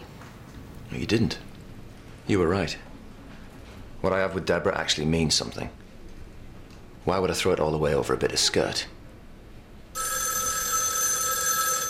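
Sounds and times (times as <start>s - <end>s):
speech: 0.9s - 1.5s, 2.3s - 2.9s, 4.0s - 5.8s, 7.1s - 9.0s
telephone bell ringing with electronic trill: 10.0s - 11.8s.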